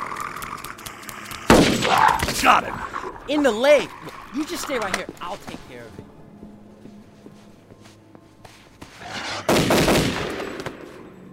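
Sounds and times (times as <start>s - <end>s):
rifle shots: 1.5s - 2.0s, 9.5s - 11.0s
speech: 1.9s - 6.2s.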